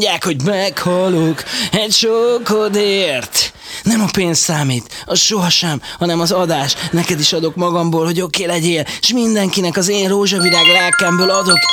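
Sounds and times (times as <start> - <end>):
speech: 0.0 - 11.7
telephone ringtone with high bright electronic tones: 10.3 - 11.7.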